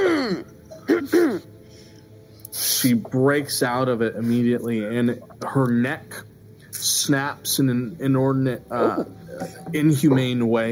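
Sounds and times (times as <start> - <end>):
person making a theatrical cough or throat-clearing: 0.0 - 1.5, 8.7 - 9.7
speech: 2.8 - 10.7.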